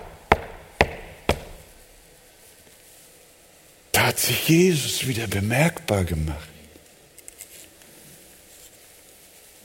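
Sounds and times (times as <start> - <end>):
knocking on the front door of a house: 0.0 - 1.6
speech: 4.1 - 6.5.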